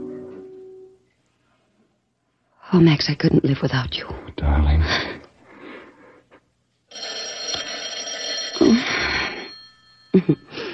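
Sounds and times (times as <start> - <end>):
speech: 2.7 - 5.2, 10.2 - 10.6
old-style telephone bell ringing: 6.9 - 10.7.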